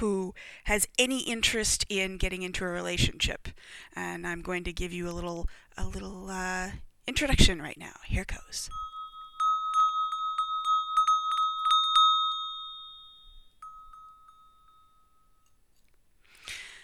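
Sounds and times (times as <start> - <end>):
speech: 0.0 - 8.8
handmade copper Tibetan bell ringing: 8.7 - 15.7.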